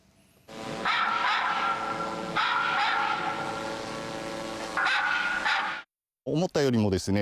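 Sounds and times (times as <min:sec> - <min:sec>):
steady mechanical hum: 0:00.0 - 0:05.8
recorded dog barking from a speaker on a drone used to repel wild animals: 0:00.8 - 0:03.6, 0:04.8 - 0:05.9.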